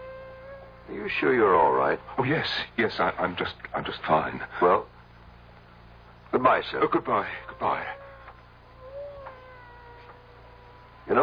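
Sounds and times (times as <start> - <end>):
steady low hum: 0.0 - 11.2
speech: 0.9 - 4.9, 6.3 - 8.0, 11.1 - 11.2
cat meowing: 7.2 - 11.2.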